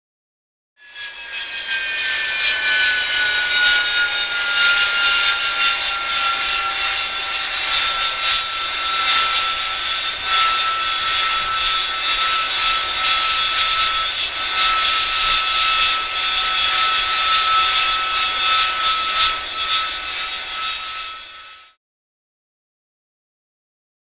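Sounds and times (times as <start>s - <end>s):
AV-8B Harrier jet engine idling: 2.3s - 21.7s.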